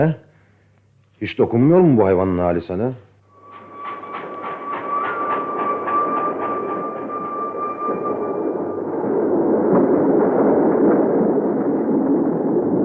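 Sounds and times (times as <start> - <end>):
speech: 0.0 - 0.2, 1.2 - 3.0
sustained whistle-like tone: 3.3 - 9.5
express train rumbling past: 3.3 - 12.8
train wheels clattering over the tracks: 3.4 - 8.7.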